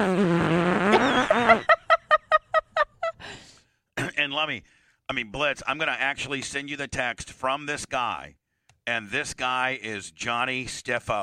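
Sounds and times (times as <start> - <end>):
long buzzy fart with sputtering bursts: 0.0 - 1.6
laughter: 0.9 - 3.2
speech: 4.5 - 11.2.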